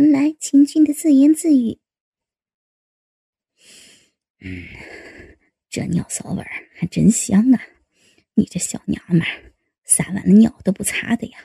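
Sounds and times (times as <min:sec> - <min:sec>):
speech: 0:00.0 - 0:01.8, 0:04.4 - 0:05.0, 0:05.8 - 0:07.8, 0:08.4 - 0:11.4
person breathing forcefully off camera: 0:03.6 - 0:05.4.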